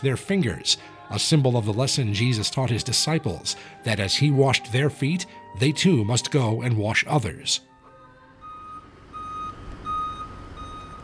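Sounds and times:
speech: 0:00.0 - 0:07.7
low shuttle bus engine rumble: 0:08.4 - 0:11.0
shuttle bus reversing alarm beeping: 0:08.4 - 0:11.0.

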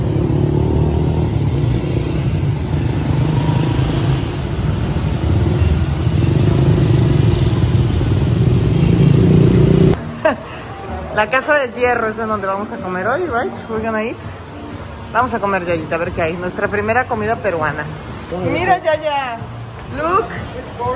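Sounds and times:
many motorcycle taxis buzzing and revving past in dense street traffic: 0:00.0 - 0:10.0
speech: 0:11.2 - 0:14.4, 0:15.1 - 0:20.9.

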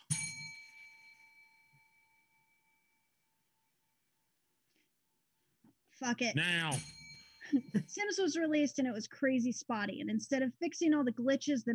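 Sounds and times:
bell struck once: 0:00.0 - 0:01.7, 0:06.4 - 0:08.1
speech: 0:06.0 - 0:11.7.

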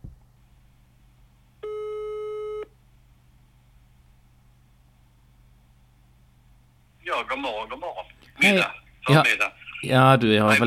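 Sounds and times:
faint low hum: 0:00.0 - 0:10.6
telephone ringing tone while a call is being placed: 0:01.6 - 0:02.7
speech: 0:07.2 - 0:10.6.

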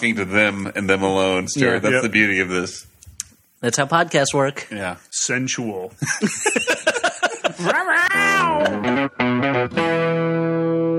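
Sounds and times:
speech: 0:00.0 - 0:02.9, 0:03.6 - 0:06.8, 0:07.6 - 0:10.8
laughter: 0:06.0 - 0:09.1
house cat meows warped by electronic effects: 0:08.0 - 0:08.9.

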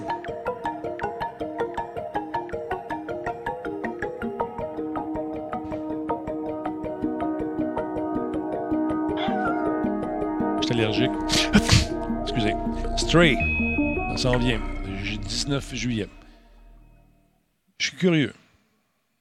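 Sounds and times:
rhythmic plucked music: 0:00.0 - 0:17.3
cat meowing: 0:09.1 - 0:10.0
speech: 0:10.7 - 0:16.2, 0:18.0 - 0:18.4
laughter: 0:11.3 - 0:11.9.

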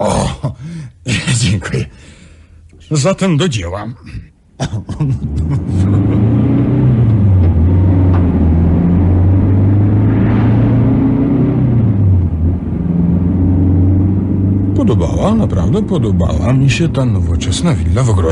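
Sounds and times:
speech: 0:00.9 - 0:02.2, 0:02.9 - 0:06.4, 0:15.0 - 0:18.2
laughter: 0:04.6 - 0:06.4
car engine driving away: 0:05.0 - 0:18.2.

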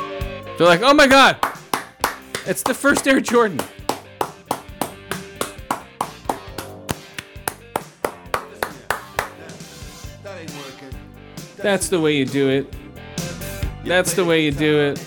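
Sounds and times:
music: 0:00.0 - 0:15.0
speech: 0:00.6 - 0:01.5, 0:02.4 - 0:03.8, 0:11.6 - 0:12.8, 0:13.8 - 0:15.0
hands clapping: 0:01.4 - 0:09.6.

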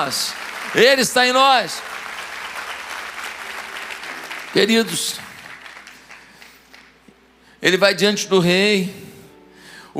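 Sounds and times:
speech: 0:00.0 - 0:02.0, 0:04.5 - 0:05.3, 0:07.6 - 0:09.1
audience applause: 0:00.0 - 0:07.0.

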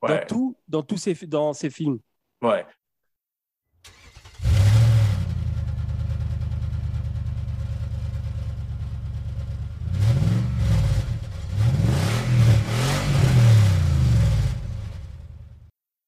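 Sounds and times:
speech: 0:00.0 - 0:02.8
V8 Interceptor muscle car engine revving: 0:03.9 - 0:15.4.

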